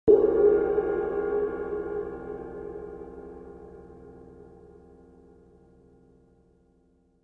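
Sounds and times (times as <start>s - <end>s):
K Constantinople suspended cymbal: 0.1s - 5.4s.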